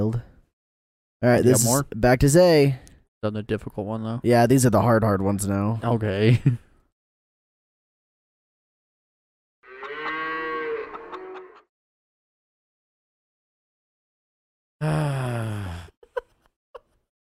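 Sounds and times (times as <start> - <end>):
speech: 0.0 - 0.3, 1.2 - 6.6
cow mooing: 9.6 - 11.7.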